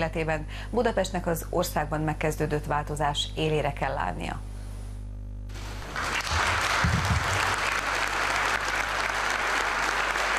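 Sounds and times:
speech: 0.0s - 4.5s
city assembly members applauding at an inaugural session: 5.6s - 10.3s.

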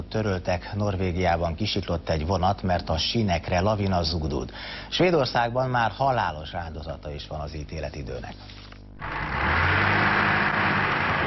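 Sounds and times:
speech: 0.1s - 9.5s
truck engines roaring as trucks stuck in snow strain to drive free in Sweden: 9.0s - 11.2s.

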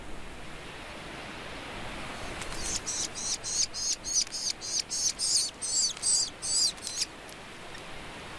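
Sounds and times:
soft hiss: 0.0s - 8.3s
Kestrel chicks on the puszta calling while being fed: 2.5s - 7.1s.

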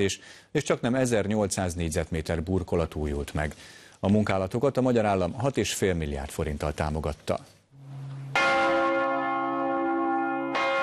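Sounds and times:
speech: 0.0s - 7.6s
new church bells of the renovated Matthias Church in Budapest ringing: 7.8s - 10.8s.

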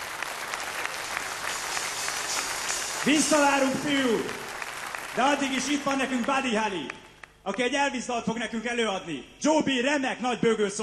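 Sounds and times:
audience applause at a rock'n'roll stage show: 0.0s - 7.7s
speech: 3.0s - 4.4s, 5.2s - 10.8s.

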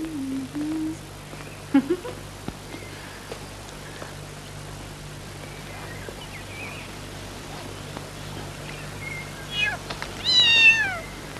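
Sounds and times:
faint steady hum: 0.0s - 11.3s
cat meowing: 9.5s - 11.2s.

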